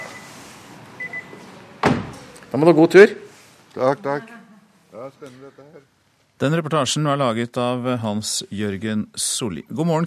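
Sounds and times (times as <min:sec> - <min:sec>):
car door closing: 0:01.8 - 0:02.3
speech: 0:02.5 - 0:10.0.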